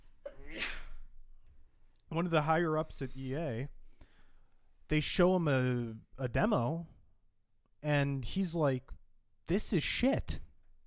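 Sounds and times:
person sneezing: 0:00.2 - 0:01.1
speech: 0:02.2 - 0:03.8, 0:04.9 - 0:07.0, 0:07.8 - 0:10.5.

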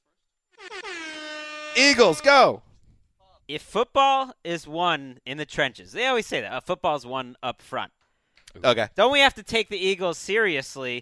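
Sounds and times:
air horn blast to start a clock: 0:00.6 - 0:02.6
speech: 0:01.8 - 0:02.7, 0:03.5 - 0:11.0.

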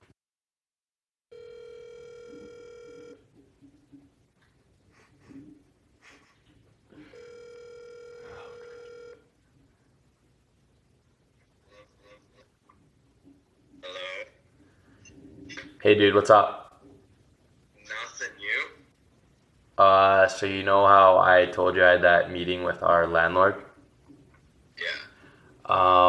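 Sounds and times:
phone line ringback tones: 0:01.3 - 0:03.3, 0:07.0 - 0:09.3
speech: 0:15.9 - 0:16.6, 0:19.9 - 0:23.6.

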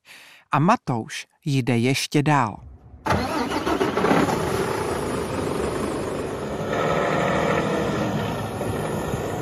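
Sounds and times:
speech: 0:00.5 - 0:03.3
heavy truck engine cranking and idling: 0:02.8 - 0:09.4.

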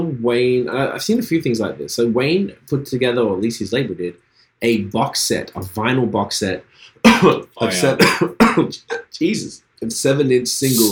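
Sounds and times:
speech: 0:00.2 - 0:10.9
person coughing and hiccuping while drinking fizzy water: 0:07.1 - 0:09.1.

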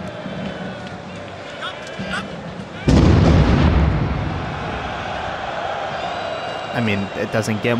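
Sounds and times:
stadium crowd murmur during a soccer match: 0:00.0 - 0:03.2, 0:04.0 - 0:07.7
explosion with a deep boom at a stadium soccer match: 0:02.9 - 0:05.4
speech: 0:06.8 - 0:07.7.

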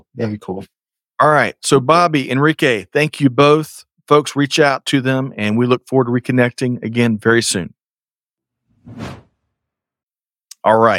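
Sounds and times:
speech: 0:00.0 - 0:07.8, 0:08.8 - 0:09.2, 0:10.6 - 0:10.9
double swoosh transition effect: 0:08.8 - 0:09.3.

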